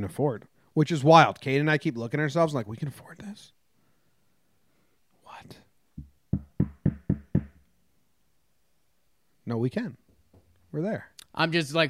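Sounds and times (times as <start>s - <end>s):
speech: 0.0s - 3.6s, 9.5s - 10.0s, 10.7s - 11.8s
knocking on wood: 6.0s - 7.6s.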